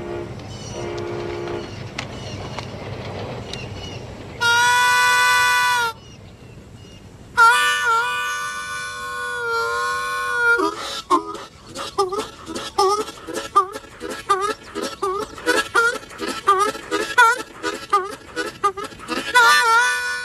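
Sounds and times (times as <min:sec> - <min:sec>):
guitar horn-like wails imitating a train horn: 0:00.0 - 0:01.7, 0:04.4 - 0:06.0, 0:07.4 - 0:20.2
guitar scratchy chugging rhythm imitating a train: 0:10.7 - 0:20.0.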